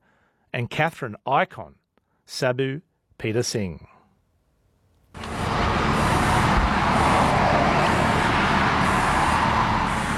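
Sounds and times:
speech: 0.6s - 3.9s
road traffic of passing cars along a town main street: 5.2s - 10.1s.

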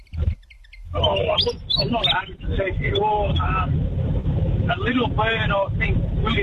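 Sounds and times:
Willie wagtail calling: 0.0s - 3.7s
steady low rumble: 0.0s - 6.4s
speech: 1.2s - 4.1s, 4.7s - 6.4s.

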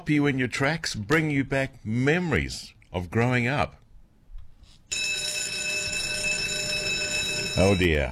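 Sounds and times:
speech: 0.0s - 3.8s, 7.6s - 8.1s
electric school bell ringing: 4.9s - 8.1s.

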